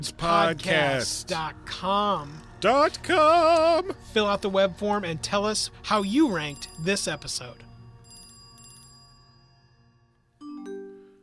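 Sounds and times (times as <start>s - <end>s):
speech: 0.0s - 7.7s
mobile phone electronic ringtone chiming: 6.0s - 11.2s.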